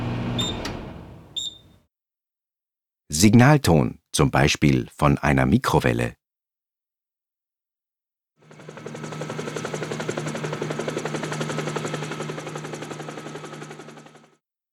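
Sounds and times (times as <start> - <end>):
speech: 3.1 - 6.2
helicopter rotor chopping over engine roar: 8.4 - 14.4.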